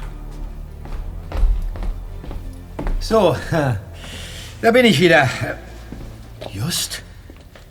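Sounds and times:
person walking from a bathroom back into a hall: 0.0 - 4.4, 5.6 - 6.5
speech: 3.0 - 5.7, 6.6 - 7.1.

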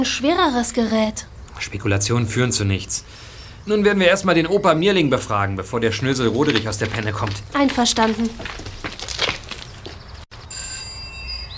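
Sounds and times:
speech: 0.0 - 8.7
noise: 0.0 - 11.5
doorbell ringing at the gate of a villa: 10.4 - 11.5.

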